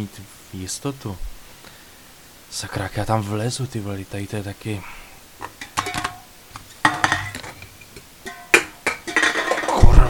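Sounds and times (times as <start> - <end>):
speech: 0.0 - 1.3, 2.5 - 5.6
tin cans clinking and rattling together: 5.4 - 10.0.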